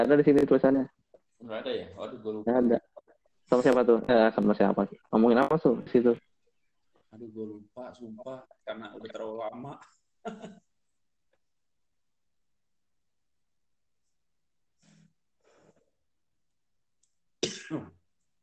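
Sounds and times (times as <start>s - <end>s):
speech: 0.0s - 2.9s, 3.5s - 6.3s, 7.1s - 10.7s, 17.7s - 18.0s
person coughing: 17.4s - 17.9s.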